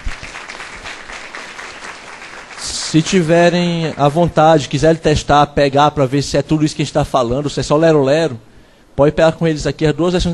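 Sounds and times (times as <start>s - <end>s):
crowd applause: 0.0s - 4.2s
speech: 2.9s - 10.3s.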